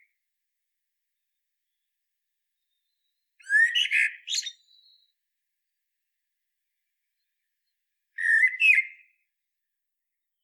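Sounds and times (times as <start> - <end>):
common blackbird Turdus merula singing: 2.6 - 5.1.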